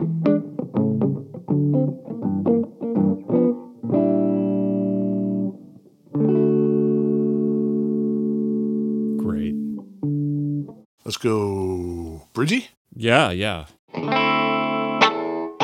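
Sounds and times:
white electric guitar played on its neck humbucker pickup: 0:00.0 - 0:10.8, 0:13.9 - 0:15.6
speech: 0:11.2 - 0:11.8, 0:12.4 - 0:14.2.

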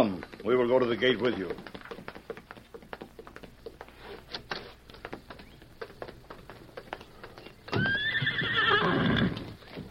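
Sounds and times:
speech: 0:00.0 - 0:01.8
horse hooves clip-clopping: 0:00.0 - 0:09.9
horse whinnying: 0:07.7 - 0:09.8.

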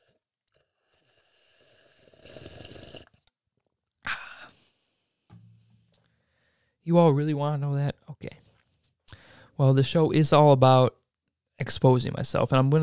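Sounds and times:
slurping sip of water: 0:00.0 - 0:03.3
breathy gasp of relief: 0:04.1 - 0:04.8, 0:06.0 - 0:06.8, 0:09.1 - 0:09.6
speech: 0:06.9 - 0:08.0, 0:09.6 - 0:11.0, 0:11.6 - 0:12.8.

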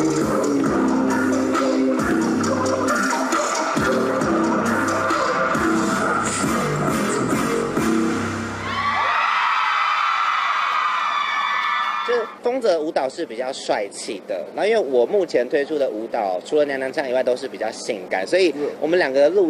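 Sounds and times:
male singer singing a dance song on stage: 0:00.0 - 0:08.0
thumping live dance music: 0:00.0 - 0:08.6
large crowd of fans screaming and whooping at live performance: 0:08.5 - 0:12.4
speech: 0:13.1 - 0:19.4.

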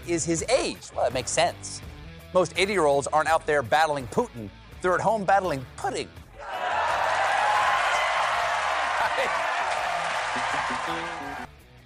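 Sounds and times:
speech: 0:00.0 - 0:06.2
loud crowd cheering and roaring: 0:06.4 - 0:11.5.

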